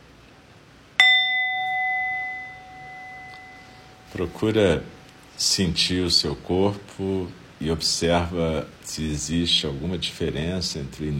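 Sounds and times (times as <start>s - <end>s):
meditation bell struck during Zen meditation practice: 1.0s - 5.3s
speech: 4.1s - 11.1s.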